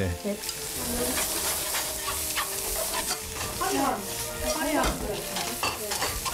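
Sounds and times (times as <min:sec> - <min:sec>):
tofu sizzling in perilla oil stir-fried in a pan: 0:00.0 - 0:06.3.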